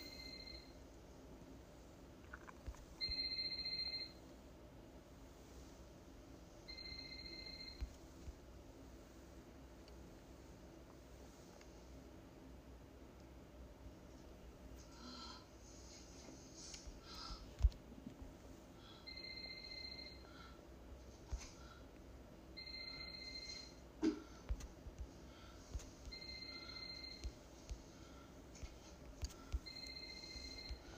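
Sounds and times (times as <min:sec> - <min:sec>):
mobile phone ringing: 0:00.0 - 0:00.8, 0:03.0 - 0:04.2, 0:06.7 - 0:08.0, 0:19.1 - 0:20.3, 0:22.6 - 0:23.8, 0:26.1 - 0:27.4, 0:29.6 - 0:30.9
low steady hum: 0:00.0 - 0:30.9.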